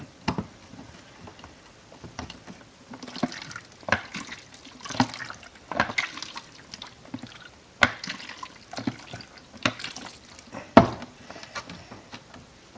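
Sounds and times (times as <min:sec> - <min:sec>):
liquid sloshing inside an inverted closed film developing tank during film processing: 0:02.9 - 0:10.5.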